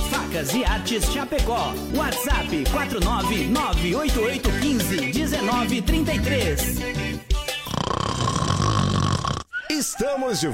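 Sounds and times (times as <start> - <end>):
speech: 0.4 - 7.3, 9.7 - 10.5
long rasping snore: 7.6 - 9.5.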